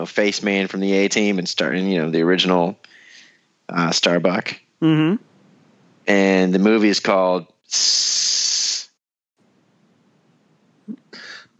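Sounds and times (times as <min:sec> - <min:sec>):
speech: 0:00.0 - 0:02.9, 0:03.7 - 0:05.3, 0:06.1 - 0:08.4
person imitating a snake hiss: 0:07.7 - 0:09.0.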